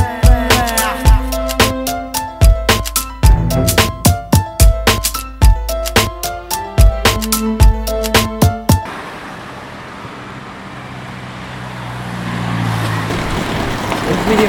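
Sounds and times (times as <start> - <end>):
steady road traffic with engine rumble: 0.0 - 14.4
short harmonic horn-like blasts: 3.2 - 4.3.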